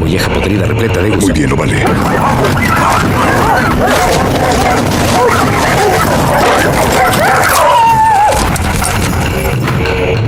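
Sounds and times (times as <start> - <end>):
speech: 0.1 - 3.0
murmuring voices: 1.0 - 9.1
several dogs barking, yipping and whimpering: 1.1 - 9.6
drawn-out dog whining cry: 1.9 - 9.1.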